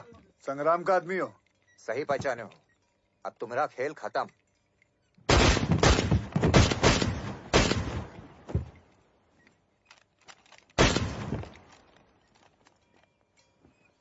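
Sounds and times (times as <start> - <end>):
speech: 0.4 - 2.6, 3.2 - 4.4
gunshots: 5.3 - 8.7, 10.8 - 11.7.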